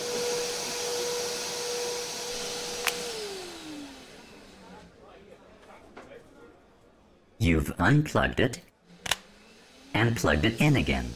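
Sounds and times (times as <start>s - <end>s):
vacuum cleaner running: 0.0s - 4.9s, 8.9s - 11.1s
speech: 7.5s - 8.7s, 10.0s - 11.1s.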